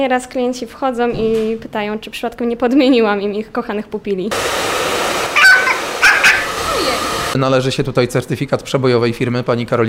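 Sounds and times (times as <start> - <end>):
speech: 0.0 - 5.0, 7.4 - 9.8
female dog yelping and whimpering at a dog groomer's: 5.3 - 6.9.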